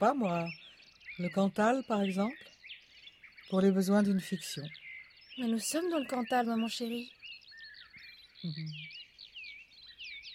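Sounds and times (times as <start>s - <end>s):
speech: 0.0s - 0.6s, 1.2s - 2.5s, 3.5s - 4.8s, 5.4s - 7.4s, 8.4s - 8.9s
skylark singing while hovering above a wheat field in the Cantal: 0.0s - 10.3s
low voice-like sound: 8.4s - 8.9s.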